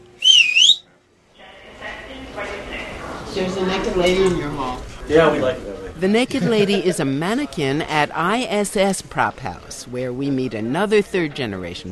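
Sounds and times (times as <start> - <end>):
murmur of room noise: 0.0 - 11.9
loud piercing whistle blown by a woman: 0.2 - 0.9
speech: 3.4 - 11.9.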